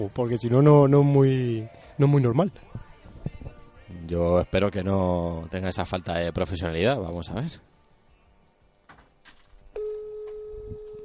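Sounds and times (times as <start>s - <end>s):
speech: 0.0s - 2.9s, 4.0s - 7.7s
ringback tone of an outgoing telephone call: 9.8s - 11.0s.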